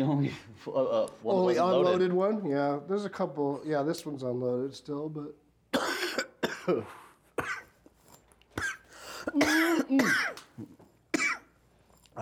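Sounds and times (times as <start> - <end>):
speech: 0.0 - 5.8, 6.6 - 7.6, 9.3 - 10.8
harsh raspy coughing after a hit: 5.7 - 7.8, 8.5 - 10.5, 11.1 - 11.6.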